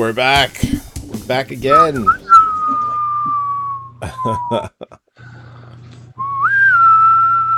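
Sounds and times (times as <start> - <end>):
speech: 0.1 - 2.2, 4.2 - 4.8
person whistling: 1.7 - 4.6, 6.2 - 7.5.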